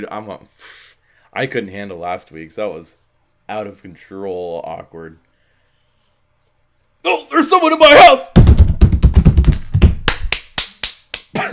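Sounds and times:
speech: 0.0 - 5.2, 7.0 - 8.6
fist smacking into an open palm: 8.4 - 10.4.

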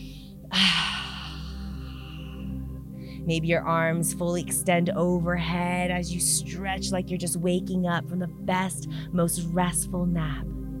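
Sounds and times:
person inhaling through the nose and exhaling through the mouth: 0.0 - 3.3
faint soft music: 0.0 - 10.7
speech: 3.2 - 10.6.

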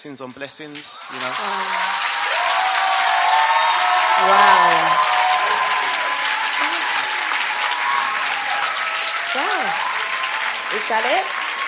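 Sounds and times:
speech: 0.0 - 2.1, 4.2 - 5.2, 10.7 - 11.4
audience applause after a testimony: 0.7 - 11.6
person whooping: 1.2 - 9.8.

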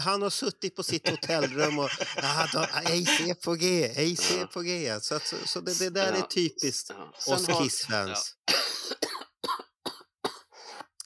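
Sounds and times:
speech: 0.0 - 9.0
laughter: 0.8 - 3.5
harsh broadband coughs: 8.5 - 11.0.

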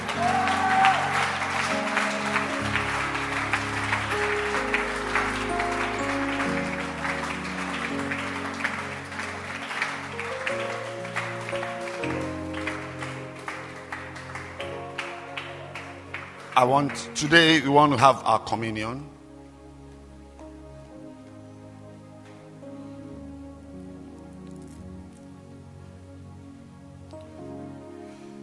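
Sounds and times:
church congregation clapping: 0.0 - 18.2
music playing: 0.0 - 28.4
speech: 16.6 - 19.2.

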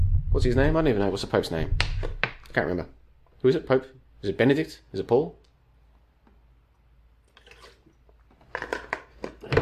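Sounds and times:
speech: 0.4 - 5.4
person drinking from a plastic bottle: 7.3 - 8.0
thin plastic bottle crinkling and crackling: 7.3 - 9.6.

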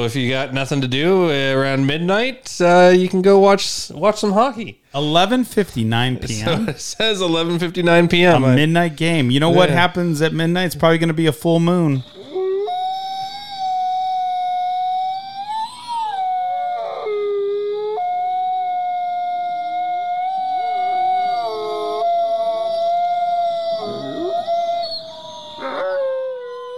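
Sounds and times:
speech: 0.0 - 12.2
person imitating a wolf howl: 12.0 - 26.7.

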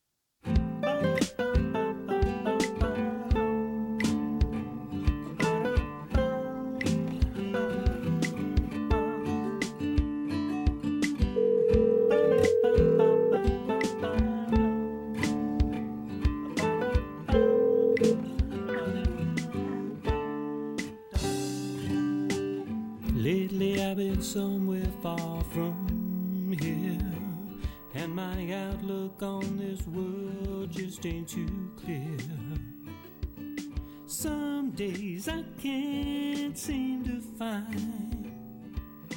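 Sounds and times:
country song as bumper music: 0.9 - 10.2, 11.1 - 38.5.

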